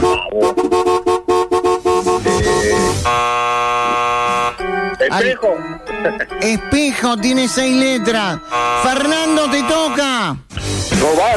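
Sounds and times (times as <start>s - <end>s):
car horn honking: 0.0s - 5.2s, 8.4s - 10.2s
speech: 5.2s - 11.3s.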